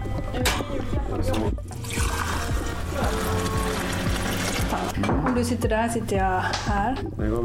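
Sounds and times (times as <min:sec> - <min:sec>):
speech: 0:00.4 - 0:02.0, 0:04.7 - 0:07.4
water pouring into a glass: 0:01.8 - 0:05.0.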